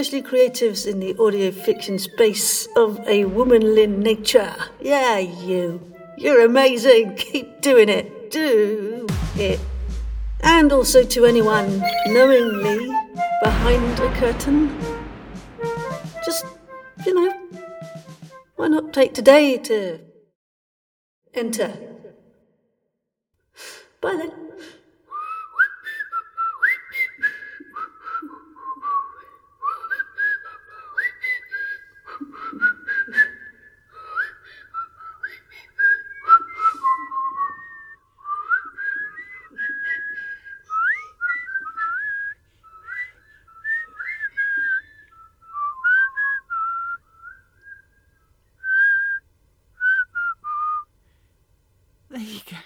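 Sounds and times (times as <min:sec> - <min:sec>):
speech: 0:00.0 - 0:09.7, 0:10.4 - 0:14.9, 0:16.3 - 0:17.3, 0:18.6 - 0:20.1, 0:21.3 - 0:21.9, 0:24.0 - 0:24.7
person whistling an unsteady tune: 0:10.4 - 0:18.4, 0:25.2 - 0:49.2, 0:49.8 - 0:50.9.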